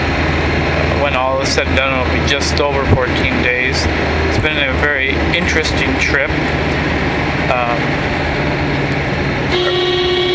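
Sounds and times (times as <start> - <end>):
busy road traffic engines rumbling: 0.0 - 10.3
speech: 1.4 - 8.6
car horn honking: 9.5 - 10.3.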